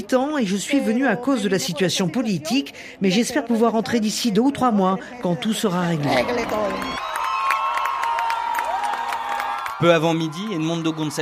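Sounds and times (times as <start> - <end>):
speech: 0.0 - 7.0, 9.8 - 11.1
large crowd cheering and exulting: 5.8 - 11.1
clapping: 6.7 - 10.6.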